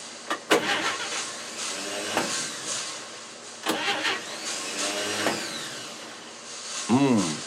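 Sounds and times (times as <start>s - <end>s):
car engine cranking with starter whine and failing to start: 0.3s - 6.4s.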